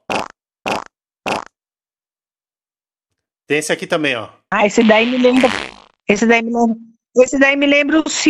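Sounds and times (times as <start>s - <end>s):
fart sound effect: 0.0s - 1.5s, 4.8s - 6.0s
speech: 3.5s - 8.2s.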